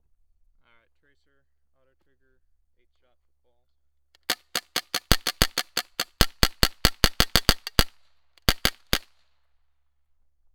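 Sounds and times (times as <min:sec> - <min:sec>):
automatic gunfire: 0:04.2 - 0:09.2.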